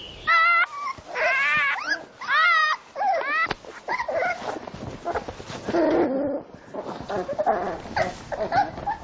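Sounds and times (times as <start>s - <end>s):
month-old fox cubs whimpering and yipping: 0.3s - 9.0s
fox cubs snuffling and scuffling: 3.1s - 9.0s.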